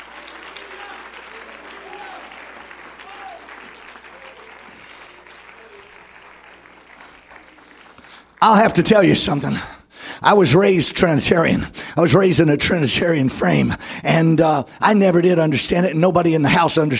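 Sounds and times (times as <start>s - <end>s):
faint voices and cheers: 0.0s - 8.0s
large group applauding: 0.0s - 9.7s
speech: 8.4s - 16.9s.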